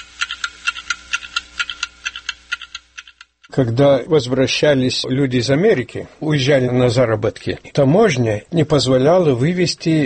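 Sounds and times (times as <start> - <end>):
several clocks ticking: 0.0 - 3.6
speech: 3.5 - 10.0.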